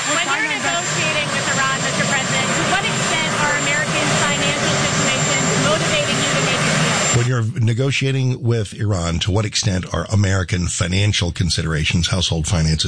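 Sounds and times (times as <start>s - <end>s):
presidential helicopter turbine roar with high-pitched whine before takeoff: 0.0s - 7.4s
several voices talking and shouting: 0.0s - 12.8s
speech: 7.7s - 12.8s.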